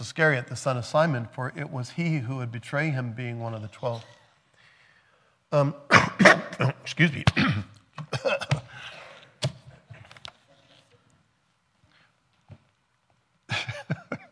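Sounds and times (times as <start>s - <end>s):
speech: 0.0s - 4.2s, 5.5s - 8.6s
person coughing: 5.9s - 8.9s.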